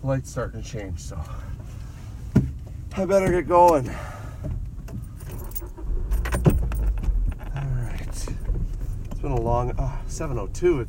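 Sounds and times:
speech: 0.0s - 1.6s, 2.9s - 4.2s, 9.2s - 10.8s
manual car engine cranking and starting: 2.6s - 10.8s
car ignition keys jingling and clicking: 5.1s - 7.8s.

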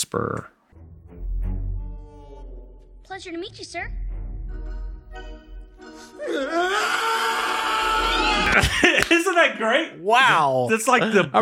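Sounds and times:
speech: 0.1s - 0.6s, 3.1s - 4.1s, 5.2s - 7.4s, 8.5s - 11.3s
man screaming in a played movie clip: 6.2s - 8.6s
laughter: 8.2s - 9.3s.

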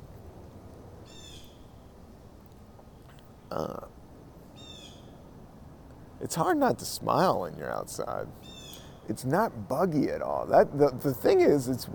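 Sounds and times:
steady low outdoor rumble: 0.0s - 11.9s
birds calling in the woods in mild weather: 1.0s - 3.7s, 4.4s - 5.3s, 7.7s - 9.1s
speech: 3.5s - 4.0s, 6.2s - 8.5s, 9.1s - 11.9s.

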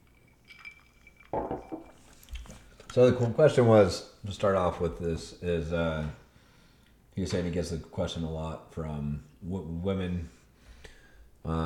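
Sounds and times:
glasses clinking together in a toast: 0.0s - 2.4s
speech: 2.9s - 6.2s, 7.2s - 10.4s, 11.4s - 11.6s.

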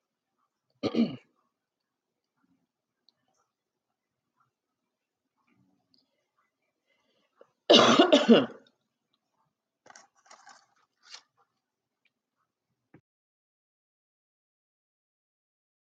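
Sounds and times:
rough cough: 0.8s - 1.3s, 7.7s - 8.6s
throat clearing: 0.8s - 1.3s.

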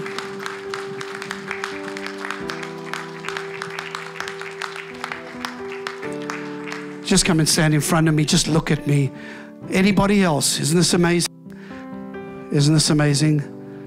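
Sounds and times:
crowd applauding: 0.0s - 8.6s
speech: 7.1s - 11.3s, 12.6s - 13.6s.

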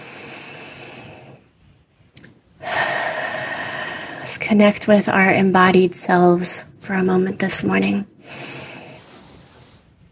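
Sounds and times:
deep breathing during a guided pause in a worship service: 0.0s - 1.7s, 2.6s - 4.3s, 8.2s - 10.1s
speech: 4.5s - 8.6s.

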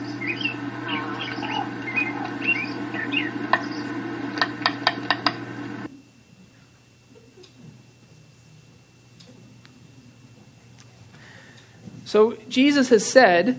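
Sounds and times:
acorn woodpeckers calling at a communal acorn store in a tree: 0.0s - 5.8s
steady low hum: 0.0s - 13.5s
sharp wooden taps: 4.4s - 5.4s
speech: 12.1s - 13.5s.

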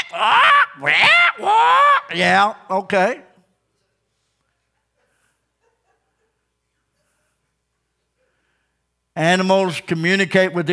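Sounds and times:
parrot squawking: 0.0s - 2.2s
speech: 0.1s - 1.1s, 2.2s - 3.2s, 9.2s - 10.7s.

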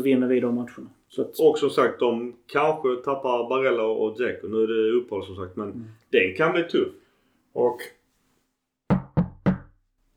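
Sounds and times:
speech: 0.0s - 7.0s, 7.6s - 8.0s
knocking on a wooden table: 8.9s - 9.7s.

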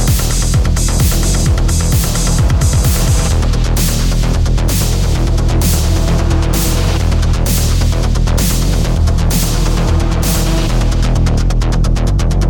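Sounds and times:
loud steady beat-driven music track: 0.0s - 12.4s.

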